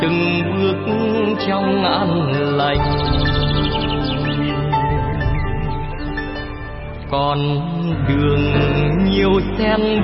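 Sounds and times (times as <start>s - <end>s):
speech: 0.0s - 3.4s, 7.1s - 10.0s
birds chirping and twittering: 0.9s - 9.5s
steady sustained musical drone: 2.7s - 8.1s.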